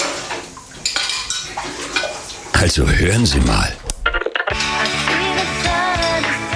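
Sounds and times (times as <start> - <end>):
continuous wet rattle of washing up: 0.0 - 2.6
dishes and cutlery clattering while washing up: 0.8 - 2.4, 4.5 - 6.4
speech: 2.6 - 3.8.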